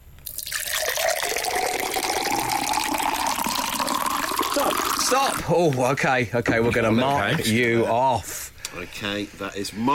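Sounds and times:
water pouring steadily into a container: 0:00.2 - 0:05.4
speech: 0:05.1 - 0:09.9.

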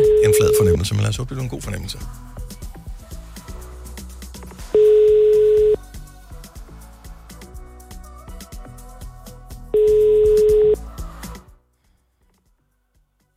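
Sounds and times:
telephone ringback tone while placing call during a live radio broadcast: 0:00.0 - 0:00.8, 0:04.8 - 0:05.8, 0:09.8 - 0:10.8
speech: 0:00.8 - 0:02.5.

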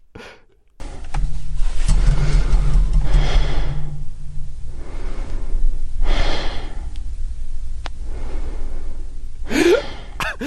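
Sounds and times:
steady low rumble: 0:00.8 - 0:10.3
man breathing slowly and heavily in deep sleep: 0:02.2 - 0:10.4.

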